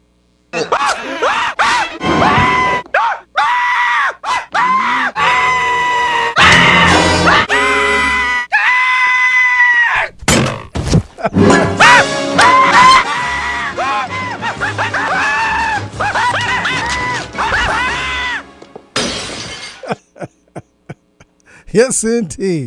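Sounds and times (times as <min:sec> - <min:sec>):
man screaming with long wavering shrieks: 0:00.6 - 0:10.1, 0:11.8 - 0:18.5
sharp crashing and shattering: 0:19.0 - 0:20.0
speech: 0:21.8 - 0:22.6.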